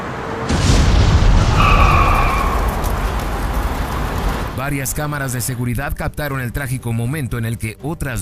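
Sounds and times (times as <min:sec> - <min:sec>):
sustained low roaring rumble of flames: 0:00.5 - 0:05.4
small plane crashing and exploding near an airport in Malaysia: 0:00.5 - 0:05.5
speech: 0:04.6 - 0:08.1.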